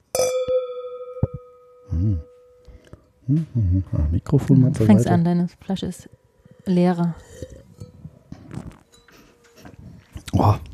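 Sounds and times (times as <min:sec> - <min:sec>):
wine glasses clinking in a toast: 0:00.1 - 0:02.6
speech: 0:03.3 - 0:07.6, 0:10.4 - 0:10.7.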